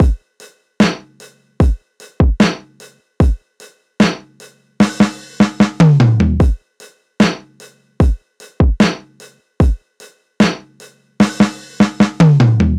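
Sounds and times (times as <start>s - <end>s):
full drum loop at 150 BPM: 0.0s - 0.2s, 0.8s - 3.4s, 4.0s - 6.6s, 7.2s - 9.8s, 10.4s - 12.7s.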